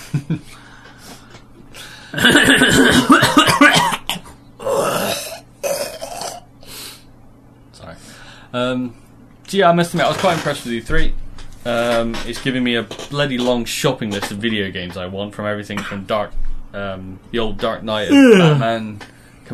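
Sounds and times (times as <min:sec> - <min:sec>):
faint steady hum: 0:00.0 - 0:19.5
speech: 0:00.2 - 0:00.6, 0:08.7 - 0:19.5
person coughing in rough throaty bursts: 0:02.2 - 0:05.9, 0:18.1 - 0:18.7.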